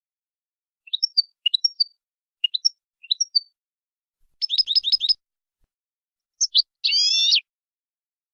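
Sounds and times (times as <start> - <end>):
European goldfinch training song in clean-song style: 0.9 - 3.6, 4.2 - 5.2, 6.3 - 7.5.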